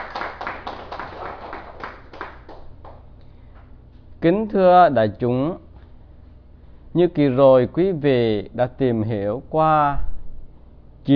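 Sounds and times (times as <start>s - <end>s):
audience clapping in a steady rhythm: 0.0s - 3.2s
speech: 4.2s - 5.6s, 6.9s - 10.1s.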